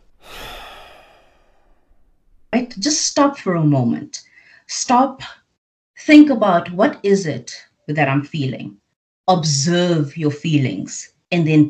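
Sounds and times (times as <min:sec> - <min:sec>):
deep breath: 0:00.0 - 0:02.0, 0:04.3 - 0:04.7
speech: 0:02.6 - 0:05.4, 0:06.0 - 0:11.6.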